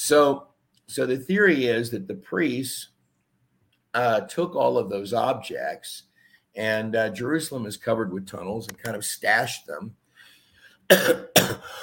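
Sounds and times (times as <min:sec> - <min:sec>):
speech: 0:00.1 - 0:02.9, 0:03.9 - 0:10.0, 0:10.9 - 0:11.8
person coughing forcefully: 0:10.9 - 0:11.8.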